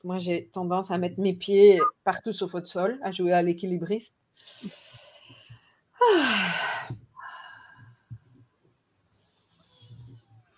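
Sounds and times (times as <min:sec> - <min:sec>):
speech: 0:00.0 - 0:04.8, 0:06.0 - 0:07.0
deep breath drawn in and slowly let out: 0:04.4 - 0:08.3.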